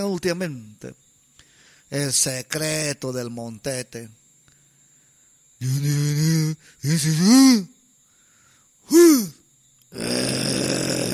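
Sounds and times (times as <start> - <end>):
speech: 0.0 - 1.0, 1.9 - 4.2, 5.6 - 7.8, 8.9 - 11.1
man mimicking snoring with his voice: 8.9 - 11.1.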